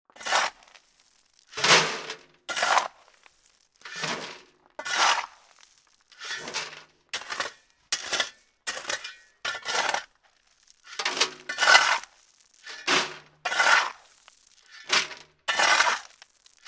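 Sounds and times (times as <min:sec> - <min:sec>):
plastic shovel scooping gravel into a wheelbarrow: 0:00.1 - 0:16.6.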